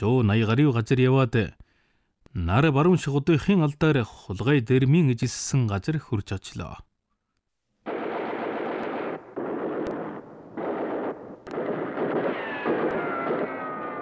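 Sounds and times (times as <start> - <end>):
speech: 0.0 - 1.6, 2.3 - 6.9
gunfire from the top of a sand dune: 7.9 - 14.0.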